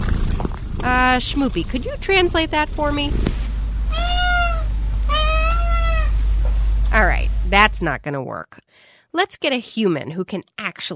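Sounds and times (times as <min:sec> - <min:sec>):
low steady hum: 0:00.0 - 0:08.5
speech: 0:00.8 - 0:03.4, 0:06.9 - 0:10.9
house cat meowing: 0:03.9 - 0:06.2.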